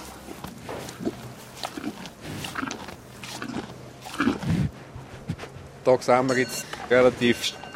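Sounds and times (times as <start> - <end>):
deeper cow snort or grunt: 0.0 - 5.7
suckler cows munching hay in a barn: 0.0 - 7.4
low steady hum: 0.0 - 7.7
speech: 5.9 - 7.6.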